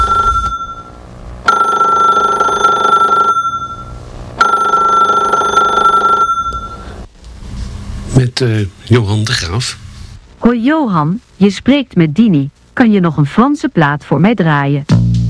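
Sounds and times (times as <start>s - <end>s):
telephone with electronic trill ringing: 0.0s - 7.0s
speech: 8.4s - 9.8s, 10.4s - 14.9s.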